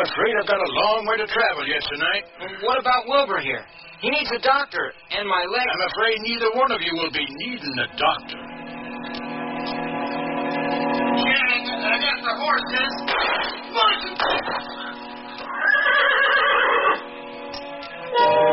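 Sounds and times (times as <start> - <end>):
speech: 0.0 - 9.9, 11.2 - 14.8
steady harmonic drone: 0.0 - 18.5
horse neighing and whinnying loudly: 15.5 - 17.0.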